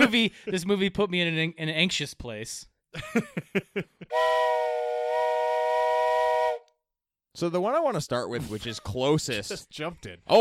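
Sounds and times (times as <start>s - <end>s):
speech: 0.1s - 5.3s, 7.4s - 10.3s
handheld whistle blown: 4.1s - 6.8s.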